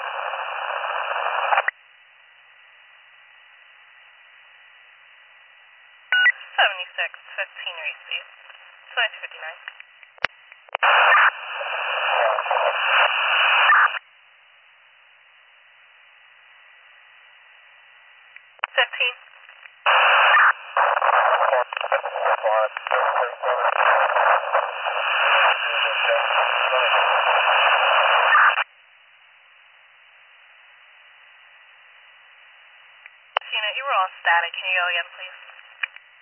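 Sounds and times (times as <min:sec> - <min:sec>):
harsh radio static crackling over a tinny channel: 0:00.0 - 0:01.8, 0:03.9 - 0:14.0, 0:16.6 - 0:28.7, 0:31.4 - 0:36.2.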